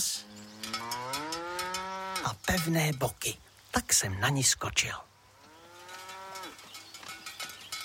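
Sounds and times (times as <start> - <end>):
cow mooing: 0.2 - 2.3, 5.3 - 6.6
speech: 2.2 - 5.1.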